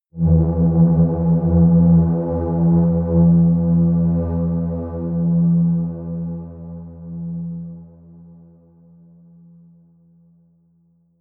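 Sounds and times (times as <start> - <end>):
short bass drone: 0.1 - 8.2.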